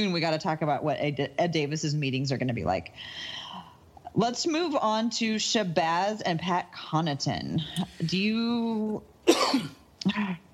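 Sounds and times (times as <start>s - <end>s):
speech: 0.0s - 3.4s, 4.2s - 10.5s
person coughing harshly: 9.3s - 10.4s.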